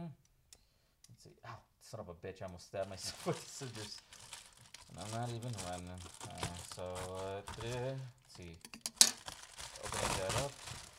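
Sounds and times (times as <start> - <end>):
speech: 1.5 - 4.3, 4.9 - 8.8
wrapping paper crinkling and tearing as a gift package is opened: 2.8 - 10.9.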